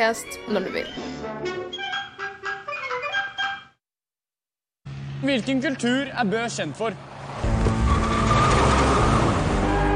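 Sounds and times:
speech: 0.0 - 2.0, 5.2 - 7.1
tires screeching and skidding: 5.2 - 9.9
car engine roaring at high revs during cruising: 7.0 - 9.9.

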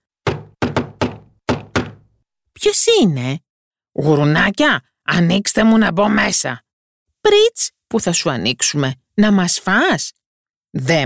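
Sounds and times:
knocking on a wooden door: 0.2 - 2.2
speech: 2.6 - 3.4, 4.0 - 6.6, 7.2 - 11.0.

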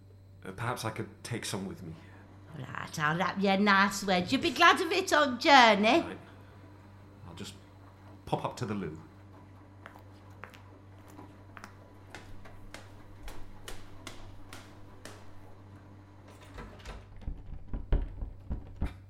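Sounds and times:
speech: 0.4 - 6.3, 7.4 - 7.6, 8.3 - 9.1
jammed door being rattled and yanked: 16.4 - 18.9.

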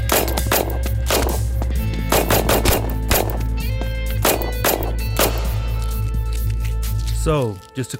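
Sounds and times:
rapid irregular volley of sharp gunshots: 0.0 - 1.4, 2.1 - 5.7
steady low rumble: 0.1 - 6.8
speech: 7.3 - 7.9.

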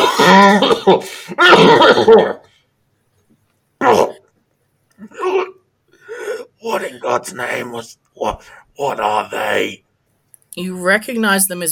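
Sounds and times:
person faking heavy coughing: 0.0 - 2.4, 5.0 - 6.4
speech: 0.4 - 2.4, 3.8 - 4.1, 6.6 - 9.8, 10.6 - 11.7.

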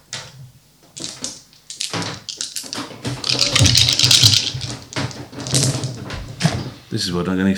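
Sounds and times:
dice rolled in a tabletop game clattering against a hard surface: 1.0 - 6.8
speech: 6.9 - 7.5.

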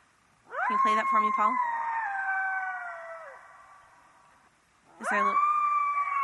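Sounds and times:
coyotes howling at night: 0.4 - 4.2, 5.0 - 6.2
speech: 0.7 - 1.7, 5.1 - 5.5.

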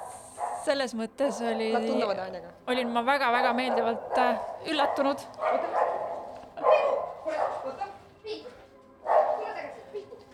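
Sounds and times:
dog barking at a visitor: 0.0 - 1.9, 2.8 - 7.9, 9.0 - 9.8
speech: 0.6 - 5.9.

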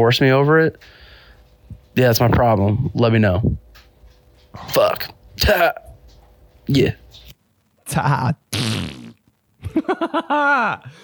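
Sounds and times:
speech: 0.0 - 1.0, 2.0 - 3.6, 4.5 - 5.8, 6.7 - 7.0, 7.9 - 9.0, 9.6 - 11.0
fart: 8.5 - 9.4
laughter: 9.6 - 10.9.

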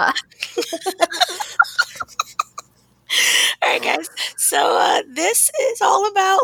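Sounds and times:
laughter: 0.0 - 4.3
person coughing: 0.6 - 2.7
speech: 5.3 - 6.4.

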